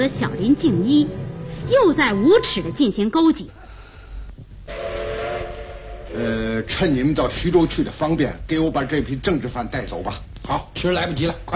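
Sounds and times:
speech: 0:00.0 - 0:03.6, 0:06.2 - 0:11.5
low rumbling: 0:00.0 - 0:11.5
steam train whistle beside an armored train: 0:01.9 - 0:03.0, 0:04.7 - 0:06.6.

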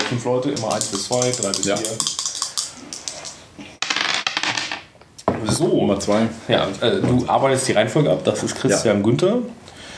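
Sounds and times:
speech: 0:00.1 - 0:02.3, 0:05.5 - 0:09.6
two dice rolled in a tabletop gaming session: 0:00.5 - 0:04.9.

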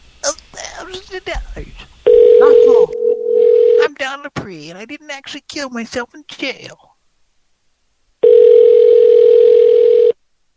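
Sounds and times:
telephone tone on a call to a real number: 0:02.1 - 0:03.9, 0:08.2 - 0:10.2
speech: 0:04.1 - 0:06.9.

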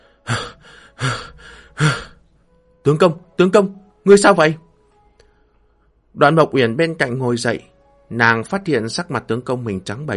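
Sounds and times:
man panting after waking from a nightmare: 0:00.0 - 0:02.2
speech: 0:02.8 - 0:04.6, 0:06.2 - 0:10.1.

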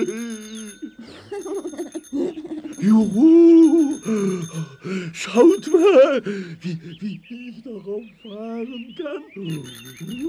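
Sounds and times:
bicycle bell ringing on a red bicycle with a luggage rack: 0:00.0 - 0:06.2, 0:09.5 - 0:10.2
laughter: 0:00.0 - 0:10.2
speech: 0:02.8 - 0:10.2.

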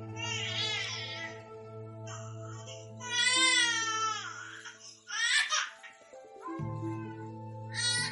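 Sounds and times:
baby crying in high-pitched wailing bursts: 0:00.0 - 0:05.9, 0:07.7 - 0:08.1
steady music: 0:00.0 - 0:08.1.

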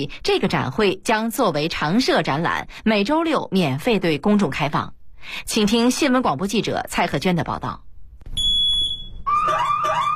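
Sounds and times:
speech: 0:00.0 - 0:07.8
white wireless smoke sensor sounding a shrill alarm: 0:08.3 - 0:10.1.

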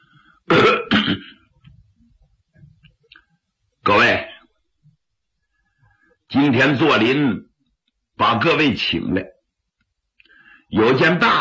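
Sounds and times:
man clearing his throat: 0:00.5 - 0:01.5
speech: 0:06.4 - 0:07.5, 0:08.2 - 0:09.3, 0:10.7 - 0:11.3.

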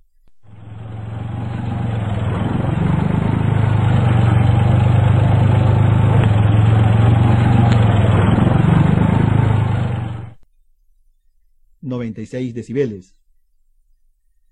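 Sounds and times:
tractor engine idling: 0:00.4 - 0:10.4
speech: 0:12.1 - 0:13.2.

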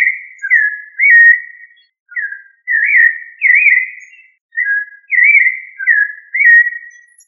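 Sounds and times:
sabia thrush of family Turdidae singing fluting whistled phrases: 0:00.0 - 0:07.2.

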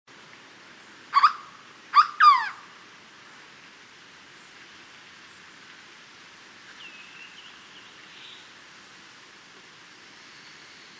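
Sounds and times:
hooded berryeater calling, Carpornis cucullata: 0:01.1 - 0:02.6.

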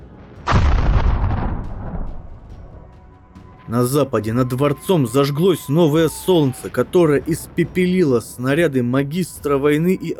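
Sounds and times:
massive explosion with deep rumbling decay: 0:00.2 - 0:03.0
speech: 0:03.7 - 0:10.1.

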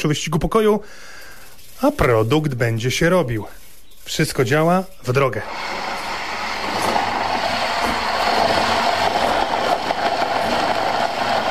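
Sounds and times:
speech: 0:00.0 - 0:01.2, 0:01.8 - 0:05.8
bicycle-powered blender crushing ice cubes: 0:05.4 - 0:11.4.

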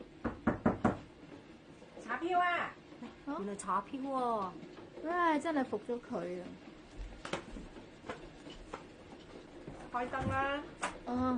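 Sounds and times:
knocking on a door at night: 0:00.2 - 0:01.1
speech: 0:02.2 - 0:02.8, 0:03.4 - 0:06.7, 0:10.0 - 0:11.3.

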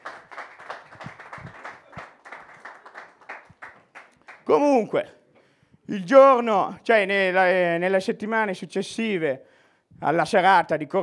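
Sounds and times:
audience applause at a comedy night: 0:00.0 - 0:04.5
speech: 0:04.5 - 0:05.2, 0:05.9 - 0:11.0.

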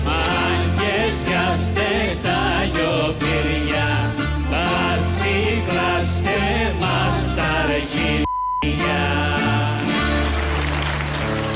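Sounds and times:
sung track with singing and accompaniment: 0:00.0 - 0:10.4
censorship bleep over a word in a sung track: 0:08.2 - 0:08.8.

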